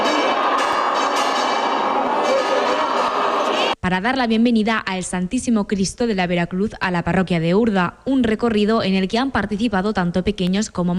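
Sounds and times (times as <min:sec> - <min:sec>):
church bells ringing to welcome a procession: 0:00.0 - 0:03.8
speech: 0:03.9 - 0:10.9.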